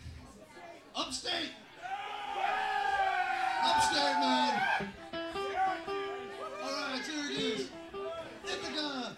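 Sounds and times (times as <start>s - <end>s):
speech: 1.0s - 1.6s
loud shout: 1.8s - 5.0s
concert audience yelling and whooping: 1.8s - 5.8s
sustained high cheering: 1.8s - 8.8s.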